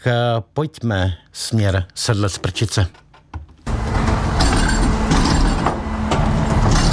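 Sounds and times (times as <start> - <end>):
speech: 0.0 - 3.0
garbage truck engine roaring: 3.7 - 6.9
metallic clanks and bangs as waste bins are emptied: 3.7 - 6.9.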